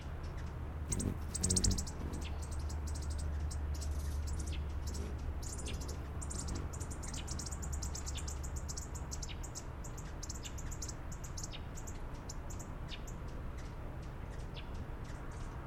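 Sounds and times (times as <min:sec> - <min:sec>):
steady low background noise: 0:00.0 - 0:15.6
Costa's Hummingbird giving sharp high ticking notes: 0:00.2 - 0:12.6.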